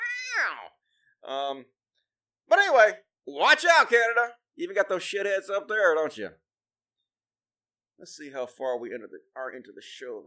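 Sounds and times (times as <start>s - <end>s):
person imitating a cat's meow: 0.0s - 0.7s
speech: 0.4s - 1.8s, 2.5s - 6.4s, 8.0s - 10.2s.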